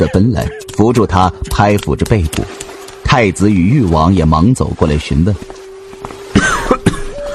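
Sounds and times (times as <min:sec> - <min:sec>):
speech: 0:00.0 - 0:05.6
coughing fit behind a sleeve: 0:06.3 - 0:07.2.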